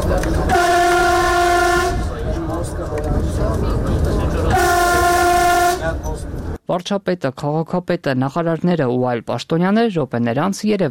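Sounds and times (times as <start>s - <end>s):
moving Armenian train rumbling: 0.0s - 6.6s
Armenian train horn blasts: 0.5s - 2.1s, 4.5s - 6.0s
speech: 6.7s - 10.8s.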